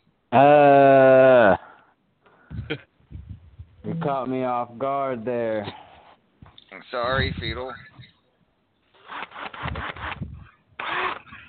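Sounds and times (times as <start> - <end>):
speech: 0.3 - 1.0, 4.0 - 5.8, 6.8 - 7.9
power drill whirring: 9.0 - 11.4.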